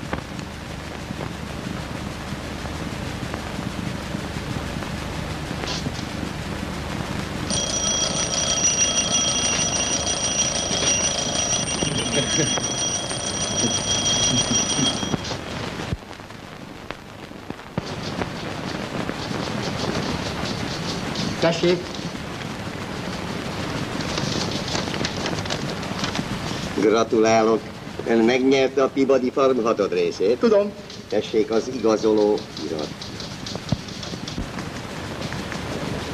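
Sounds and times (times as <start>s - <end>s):
rumbling background: 0.0s - 36.1s
shrill electric bell ringing to summon a servant: 7.5s - 15.4s
speech: 21.6s - 21.9s, 27.1s - 33.0s.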